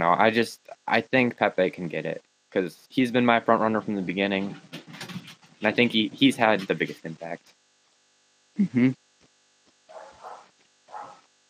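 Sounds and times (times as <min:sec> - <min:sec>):
speech: 0:00.0 - 0:04.7, 0:05.6 - 0:07.6, 0:08.6 - 0:09.0
dog barking: 0:09.9 - 0:11.3.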